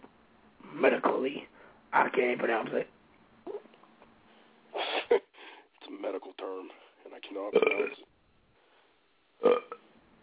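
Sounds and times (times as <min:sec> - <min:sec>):
speech: 0:00.8 - 0:03.0, 0:06.0 - 0:08.1, 0:09.4 - 0:09.8
throaty burp: 0:07.6 - 0:08.0, 0:09.4 - 0:09.8.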